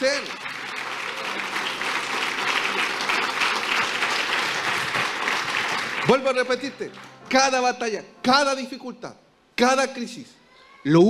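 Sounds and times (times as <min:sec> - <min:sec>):
audience applauding: 0:00.0 - 0:07.4
speech: 0:06.1 - 0:11.0.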